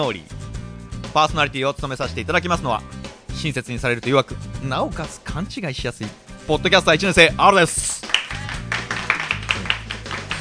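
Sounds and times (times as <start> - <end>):
speech: 0.0 - 0.4, 1.2 - 7.9
low sustained musical backing: 0.0 - 10.4
hands clapping in a quick steady rhythm: 7.6 - 10.4.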